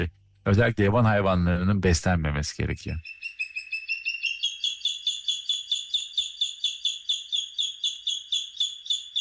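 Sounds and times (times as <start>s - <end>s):
speech: 0.0s - 3.3s
bird calling: 3.0s - 9.1s.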